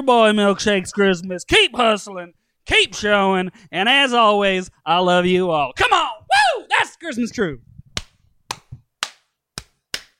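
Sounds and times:
speech: 0.0s - 6.1s, 7.0s - 7.7s
sharp hand claps: 8.0s - 10.1s.

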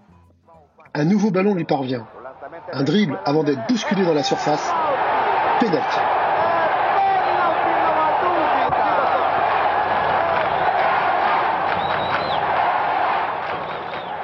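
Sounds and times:
speech: 1.0s - 5.0s, 5.6s - 6.2s
large stadium crowd roaring and cheering: 2.2s - 14.2s
whistles in a stadium crowd: 7.2s - 7.8s, 8.4s - 9.3s, 10.0s - 14.2s.

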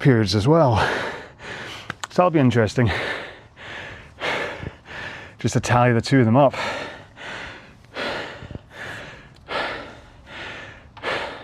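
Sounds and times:
speech: 0.0s - 1.6s, 2.2s - 3.2s, 5.4s - 6.7s
heavy breathing after rowing exercise: 0.7s - 2.0s, 2.8s - 5.4s, 6.5s - 11.4s.

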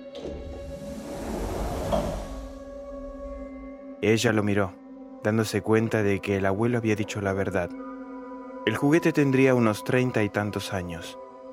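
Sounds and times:
door opening slowly with a creaking scrape: 0.0s - 2.7s
speech: 4.0s - 7.9s, 8.6s - 11.2s.

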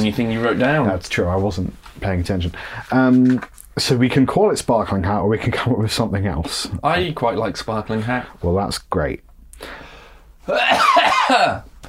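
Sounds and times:
speech: 0.0s - 11.7s
harsh coughing: 10.5s - 11.7s.

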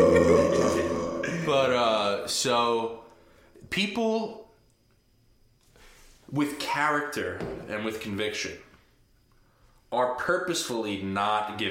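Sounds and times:
long deep bass-boosted burp with reverb: 0.0s - 2.0s
speech: 2.2s - 3.1s, 3.7s - 4.4s, 6.3s - 8.7s, 9.9s - 11.6s.

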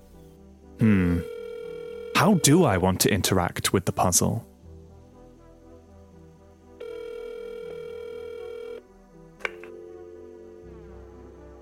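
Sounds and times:
speech: 0.8s - 1.2s, 2.2s - 4.5s
steady phone tone humming: 0.8s - 2.9s, 6.8s - 8.8s.

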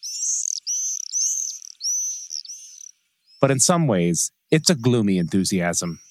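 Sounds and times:
swifts screaming: 0.0s - 3.6s
speech: 3.4s - 6.0s.

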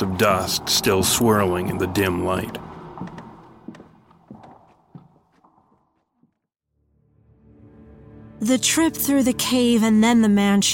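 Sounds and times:
speech: 0.2s - 2.7s, 8.4s - 10.7s
footsteps thudding: 2.4s - 6.5s.

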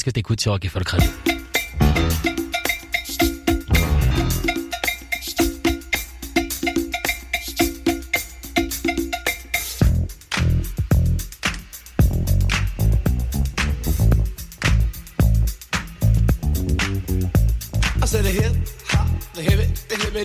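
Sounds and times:
speech: 0.0s - 1.3s
driving bassline: 1.0s - 5.8s, 9.0s - 20.2s
hip hop song intro with punchy beat: 1.0s - 20.2s.

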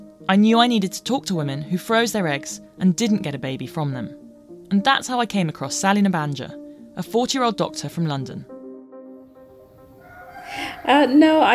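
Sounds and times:
speech: 0.3s - 8.5s, 10.8s - 11.5s
cockerel crowing in Uganda: 10.0s - 11.2s.

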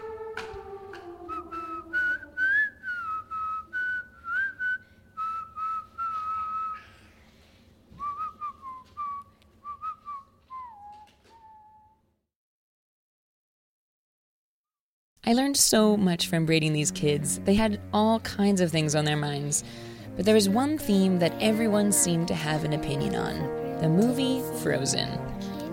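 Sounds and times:
child practicing whistling: 1.3s - 7.1s, 8.0s - 12.0s
speech: 15.3s - 25.5s.

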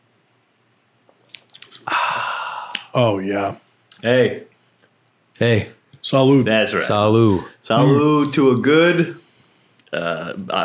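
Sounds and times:
wet lip clicks while sipping a shaken daiquiri cocktail: 1.1s - 1.8s, 2.7s - 2.9s
speech: 3.0s - 4.5s, 5.4s - 9.2s, 9.9s - 10.6s.

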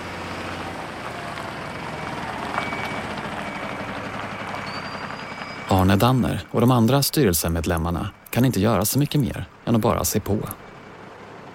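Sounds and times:
heavy trucks idling and moving along a street in Stockholm: 0.0s - 11.5s
faint high beeping tones: 1.9s - 10.1s
speech: 5.8s - 10.6s.

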